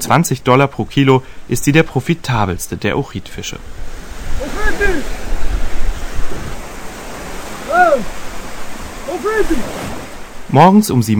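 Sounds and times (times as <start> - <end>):
speech: 0.0 - 5.2, 7.8 - 8.2, 9.2 - 9.9, 10.5 - 11.1
lake waves rushing against the shore: 3.1 - 10.8.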